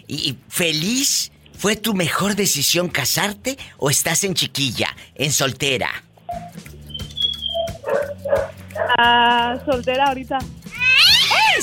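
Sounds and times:
speech: 0.1 - 6.6, 8.3 - 10.6
small dog barking through a phone speaker: 7.5 - 9.0.

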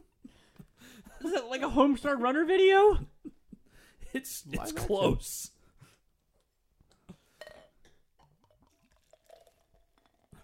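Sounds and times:
speech: 1.2 - 3.1, 4.1 - 5.6
beer being poured into a glass: 7.4 - 10.4.

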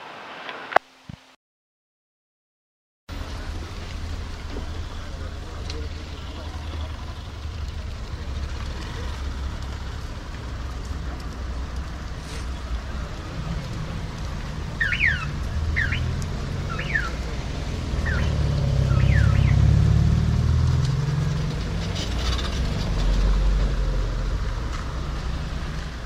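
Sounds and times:
steady outdoor hiss of light summer rain: 0.0 - 1.3, 3.1 - 26.0
small three-wheeled moto taxi engine rumbling on brick side street in light rain: 3.1 - 26.0
short bird chirps in Oaxaca Mexico: 14.8 - 17.2, 18.0 - 19.7.

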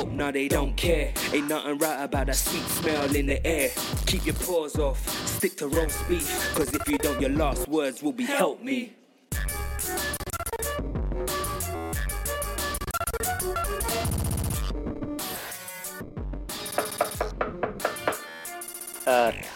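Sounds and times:
music: 0.0 - 8.5, 9.3 - 19.5
speech: 0.0 - 9.0
knocking on a door: 16.7 - 18.3.

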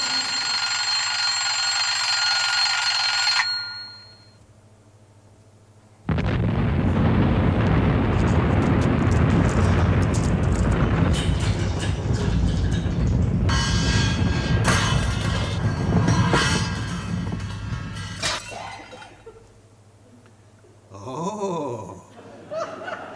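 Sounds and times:
alarm clock bell ringing loudly: 0.0 - 4.4
huge roaring blast: 6.1 - 18.2
laughter: 21.2 - 23.1.

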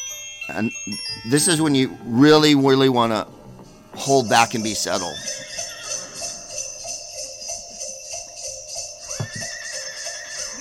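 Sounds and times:
speech: 0.5 - 3.4, 4.0 - 5.5
rising tonal squeal: 3.1 - 10.6
horse whinnying: 5.0 - 6.8, 9.0 - 10.6
faint hoof-like thumps: 9.1 - 9.6.

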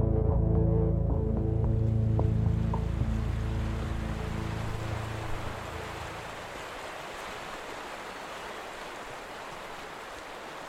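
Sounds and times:
low rumbling hum: 0.0 - 6.4
river water flowing: 1.4 - 10.6.

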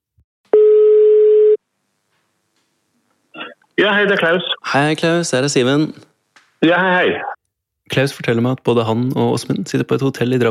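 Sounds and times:
telephone ringing tone of an outgoing call: 0.5 - 1.6
speech: 3.8 - 7.3, 7.9 - 10.4.

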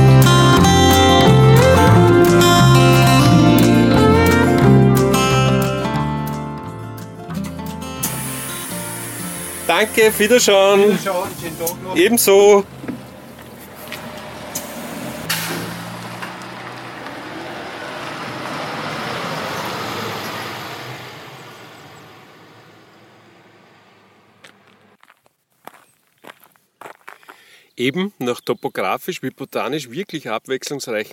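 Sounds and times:
large bus engine idling and pulling away along a road in Lower Austria: 0.0 - 25.0
road traffic at a bus stop: 0.0 - 25.3
speech: 9.8 - 12.8, 27.8 - 31.1
crisp footsteps on pavement in a quieter street: 12.7 - 14.7, 24.3 - 27.6.

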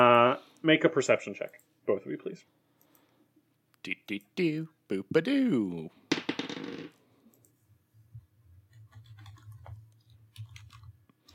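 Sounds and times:
speech: 0.6 - 2.6, 3.8 - 6.0
small plastic dice clicking and rattling on a table: 6.1 - 7.0.

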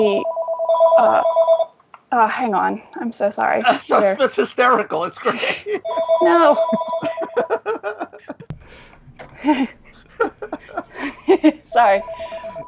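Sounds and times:
speech: 0.0 - 0.4, 1.0 - 1.4, 2.1 - 7.5, 8.2 - 12.6
phone ringing with electronic tones: 0.0 - 1.7, 5.8 - 7.7, 11.7 - 12.6
people laughing: 3.6 - 12.6.

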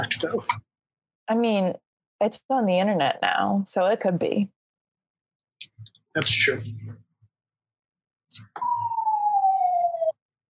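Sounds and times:
speech: 0.0 - 0.7, 1.3 - 4.6, 5.8 - 7.0, 8.3 - 8.9
siren passing outside a house: 8.6 - 10.2.

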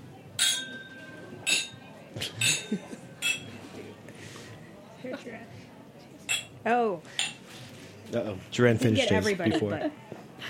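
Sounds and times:
murmur of chatter: 0.0 - 10.4
glasses clinking together in a toast: 0.4 - 3.6, 6.3 - 6.6, 7.2 - 7.4
speech: 2.2 - 3.0, 6.6 - 7.2, 8.1 - 10.0.

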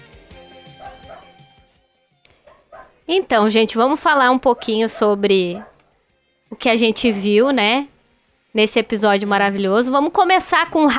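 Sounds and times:
dog barking and yipping excitedly: 0.8 - 1.4, 2.4 - 3.0, 4.4 - 6.0, 6.9 - 7.4
speech: 3.1 - 5.7, 6.5 - 7.9, 8.5 - 10.9.

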